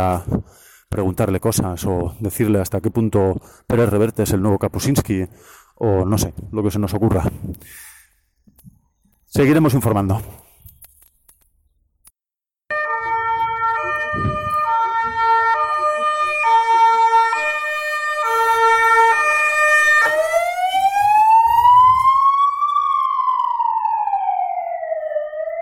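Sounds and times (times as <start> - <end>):
speech: 0.0 - 7.9, 9.3 - 10.4
ambulance siren in a street in Segovia, Spain: 12.7 - 25.5.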